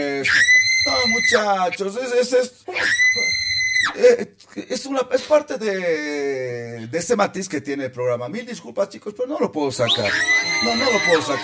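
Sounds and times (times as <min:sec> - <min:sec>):
speech: 0:00.0 - 0:11.4
woman's scream sound effect: 0:00.3 - 0:01.5, 0:02.7 - 0:04.0, 0:10.1 - 0:11.4.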